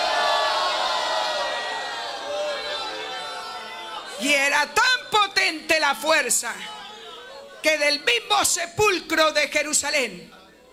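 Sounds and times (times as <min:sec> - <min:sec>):
audience shouting praise to God: 0:00.0 - 0:04.8
speech: 0:04.2 - 0:10.4.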